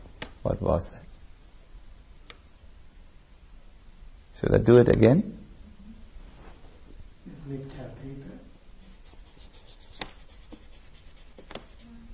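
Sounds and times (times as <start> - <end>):
steady hiss: 0.0 - 12.1
speech: 0.4 - 1.1, 4.4 - 5.4, 7.5 - 8.4
marker tip scratching across paper: 8.8 - 12.0.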